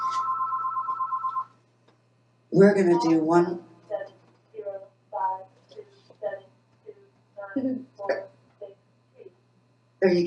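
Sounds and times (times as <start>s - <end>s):
telephone ringing with a rapid electronic trill: 0.0s - 1.6s
faint low hum: 0.0s - 10.2s
speech: 2.5s - 3.7s, 10.0s - 10.2s.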